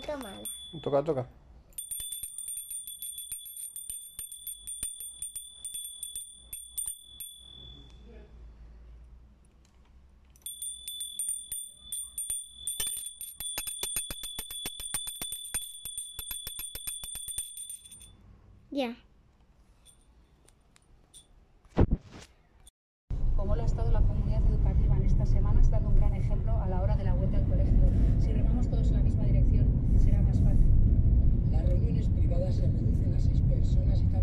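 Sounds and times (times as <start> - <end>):
small bell being rung repeatedly: 0.0 - 8.1, 10.4 - 18.2
speech: 0.1 - 1.4
low rumble: 23.1 - 34.2.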